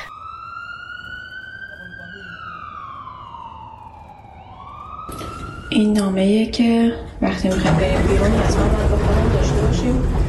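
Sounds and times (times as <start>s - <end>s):
ambulance siren wailing: 0.0s - 6.8s
traffic rumble: 0.0s - 10.2s
speech: 5.1s - 10.2s.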